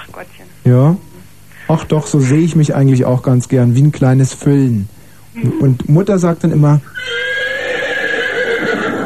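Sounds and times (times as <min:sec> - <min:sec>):
speech: 0:00.2 - 0:01.0, 0:01.7 - 0:07.2
stallion whinnying: 0:06.9 - 0:09.0.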